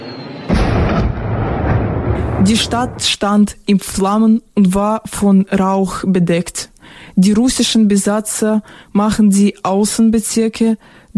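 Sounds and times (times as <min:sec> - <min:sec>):
explosion of an incoming artillery shell hitting a city: 0:00.5 - 0:03.0
dense rumbling roar after an artillery shell explosion: 0:00.5 - 0:03.1
speech: 0:02.4 - 0:11.1.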